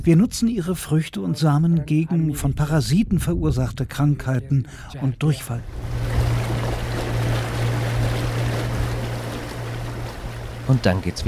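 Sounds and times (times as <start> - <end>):
speech: 0.0 - 6.0, 10.7 - 11.2
motorboat engine droning on a lake: 5.6 - 11.2
water rushing and splashing beneath a motorboat: 5.6 - 11.2.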